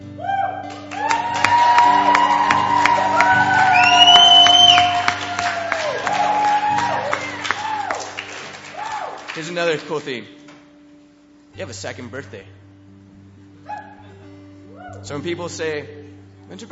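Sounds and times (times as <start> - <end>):
large audience shouting and cheering with whoops and cries: 0.2 - 9.3
speech: 9.6 - 10.4, 11.6 - 12.6, 15.0 - 16.6.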